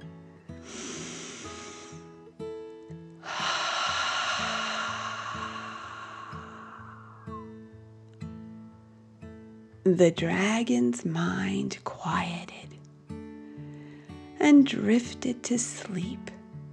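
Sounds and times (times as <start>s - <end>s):
slow deep breath in and out: 0.6s - 2.2s, 3.2s - 7.7s
speech: 9.9s - 12.7s, 14.4s - 16.4s.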